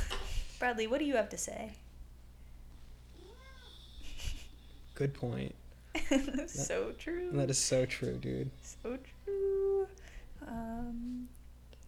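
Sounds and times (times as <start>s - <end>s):
steady low hum: 0.0s - 11.8s
speech: 0.6s - 1.8s, 5.0s - 11.4s
cat meowing: 3.2s - 4.2s.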